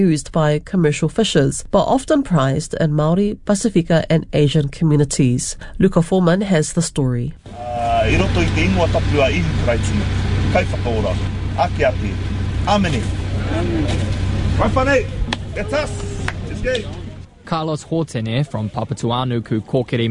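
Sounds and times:
speech: 0:00.0 - 0:20.1
idling car engines from a queue of cars at Mangere Centre Park car park: 0:07.4 - 0:17.5.

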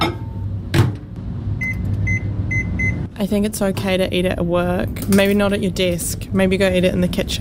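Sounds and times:
microwave oven humming: 0:00.0 - 0:03.2
speech: 0:03.2 - 0:07.3.

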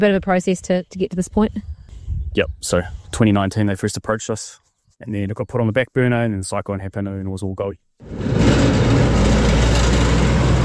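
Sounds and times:
speech: 0:00.0 - 0:01.7, 0:02.3 - 0:08.8
trucks and cars rumbling and rattling over a temporary bridge: 0:08.0 - 0:10.6.

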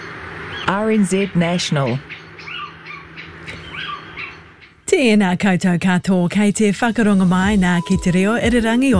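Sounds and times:
low hum: 0:00.0 - 0:08.9
speech: 0:00.7 - 0:02.1, 0:05.0 - 0:08.9
little owl calling with short rising yelping notes: 0:01.8 - 0:04.8.

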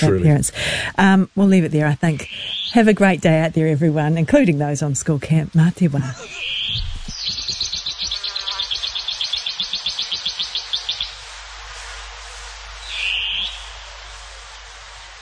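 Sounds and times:
speech: 0:00.0 - 0:06.8
long-tailed cuckoo calling: 0:06.1 - 0:11.1
harsh long-tailed cuckoo screech: 0:08.1 - 0:08.8.

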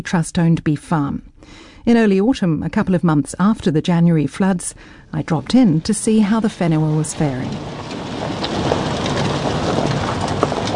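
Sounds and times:
speech: 0:00.0 - 0:08.4
light rain pattering: 0:05.4 - 0:10.7
wind rushing: 0:05.4 - 0:10.7.

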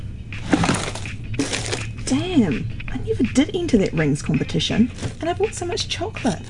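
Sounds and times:
small hard objects clattering and rustling in a cluttered junk drawer: 0:00.4 - 0:02.2, 0:04.9 - 0:05.3, 0:06.3 - 0:06.4
speech: 0:02.1 - 0:06.4.

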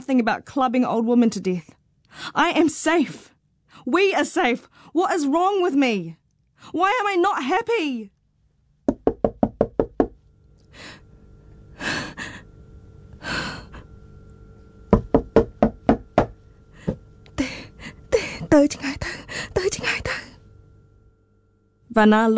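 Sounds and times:
speech: 0:00.0 - 0:08.2, 0:18.6 - 0:20.3, 0:22.0 - 0:22.3
man knocking on a door: 0:08.9 - 0:10.2, 0:14.9 - 0:17.0.

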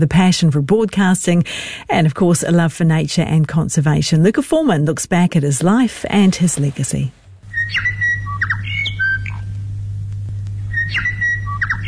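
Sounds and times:
speech: 0:00.0 - 0:07.9
steady low hum: 0:00.0 - 0:11.8
morning bird call played on radio: 0:07.5 - 0:09.5, 0:10.7 - 0:11.8.

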